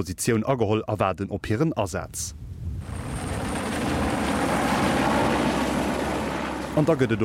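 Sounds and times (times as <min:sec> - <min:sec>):
speech: 0:00.0 - 0:03.1, 0:06.8 - 0:07.2
helicopter engine drone overhead: 0:02.8 - 0:07.2.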